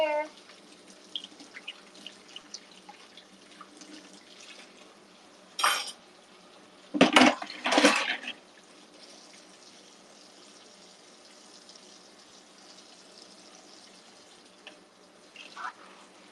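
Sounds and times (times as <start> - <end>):
water running from a kitchen tap: 0.0 - 16.3
plates and cutlery clinking at a kitchen sink: 5.6 - 6.0.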